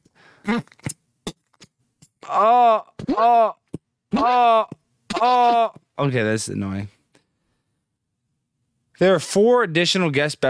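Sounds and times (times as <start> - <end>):
speech: 0.4 - 0.8, 6.0 - 7.0, 9.0 - 10.4
man groaning and straining on the toilet in a bathroom: 0.4 - 0.9, 2.2 - 6.0.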